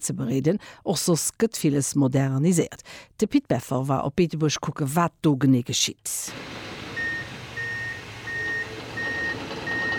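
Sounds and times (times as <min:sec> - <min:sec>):
speech: 0:00.0 - 0:06.7
construction site noise: 0:06.3 - 0:09.9
low engine rumble: 0:06.3 - 0:09.9
vehicle reversing alarm beeping: 0:06.9 - 0:09.9.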